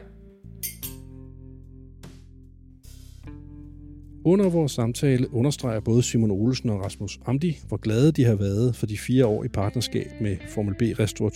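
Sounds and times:
glasses clinking in a toast: 0.6s - 1.1s
speech: 4.2s - 11.3s.

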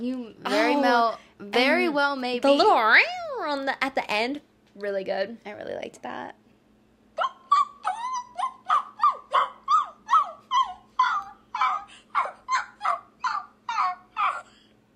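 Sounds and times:
speech: 0.0s - 6.4s
woman's voice imitating a whimpering dog: 7.2s - 14.5s.

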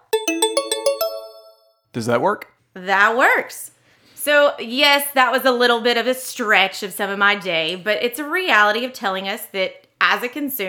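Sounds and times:
bright bell-like chime notes struck in a rapid rhythm: 0.0s - 1.6s
speech: 2.0s - 10.6s.

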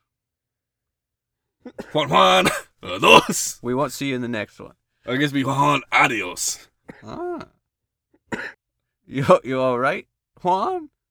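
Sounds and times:
speech: 1.6s - 7.6s, 8.3s - 11.0s
sharp harsh cough: 1.7s - 3.6s, 5.4s - 7.5s, 8.3s - 8.6s
strained voiced throaty sound: 2.0s - 3.6s, 5.2s - 6.6s.

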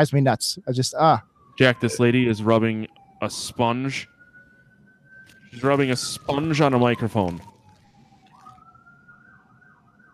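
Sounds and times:
speech: 0.0s - 4.1s, 5.5s - 7.5s
police siren wailing: 0.8s - 10.1s.

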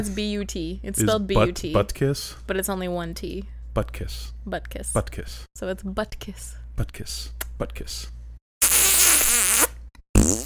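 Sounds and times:
speech: 0.0s - 8.2s
raspberry blown with the lips: 8.6s - 10.4s.

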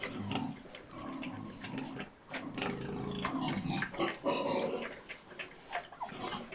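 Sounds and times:
pigs grunting and snuffling while feeding: 0.0s - 6.5s.

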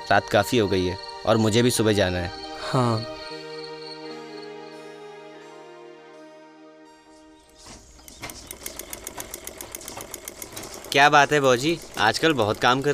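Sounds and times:
soft sustained music: 0.0s - 8.9s
speech: 0.1s - 3.2s, 10.9s - 12.9s
sewing machine stitching a tailoring order at home: 7.6s - 12.9s.

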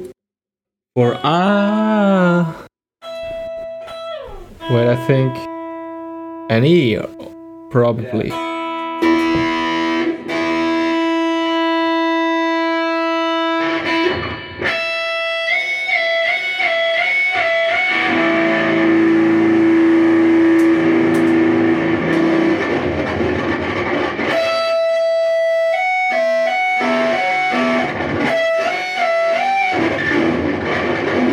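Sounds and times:
speech: 1.0s - 2.5s, 4.9s - 5.5s, 6.5s - 8.4s
electric guitar through Big Muff and Rat distortion pedals: 3.0s - 31.3s.

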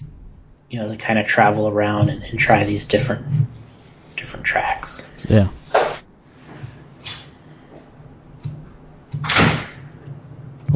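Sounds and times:
steady low hum: 0.0s - 10.7s
speech: 0.7s - 5.8s
door shutting thud: 9.2s - 9.8s.

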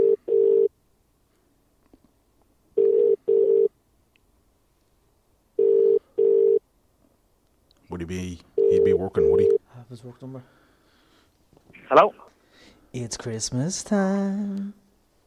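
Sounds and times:
telephone double-pulse ringing tone: 0.0s - 0.7s, 2.8s - 3.7s, 5.6s - 6.6s, 8.6s - 9.6s
speech: 8.1s - 10.6s, 11.9s - 12.3s, 12.9s - 14.8s.

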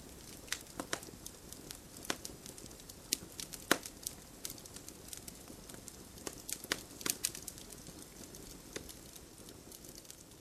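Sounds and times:
campfire crackling with pops and snaps: 0.0s - 10.4s.

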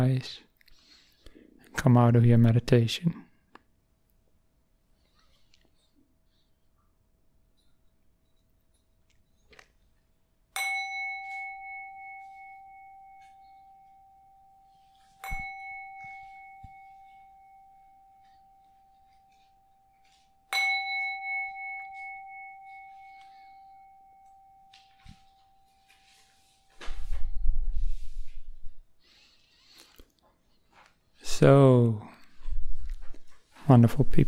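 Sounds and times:
speech: 0.0s - 0.5s, 1.8s - 3.2s, 31.4s - 32.0s, 33.7s - 34.2s
meditation bell being struck: 10.5s - 28.6s.

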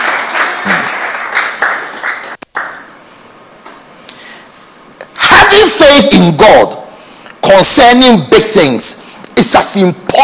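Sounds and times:
crowd applause: 0.0s - 2.8s
speech: 5.8s - 6.8s, 7.5s - 10.1s.

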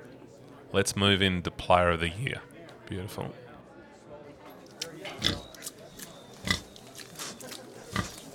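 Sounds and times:
murmur of noise: 0.0s - 8.3s
speech: 0.7s - 3.4s, 5.2s - 5.5s
pig oinking: 5.2s - 5.6s, 6.4s - 6.8s, 7.9s - 8.3s.

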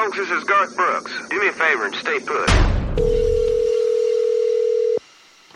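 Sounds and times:
speech: 0.2s - 3.3s
telephone dial tone: 3.0s - 5.0s.

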